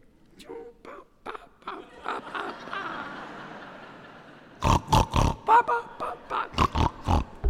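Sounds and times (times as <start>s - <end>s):
laughter: 1.3s - 4.8s, 5.4s - 7.4s
pig grunting and oinking on a riverbank: 4.6s - 5.6s, 6.5s - 7.4s.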